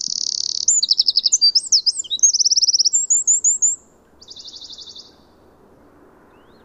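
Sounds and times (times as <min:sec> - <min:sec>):
Eurasian wren Troglodytes troglodytes singing trills: 0:00.0 - 0:05.3.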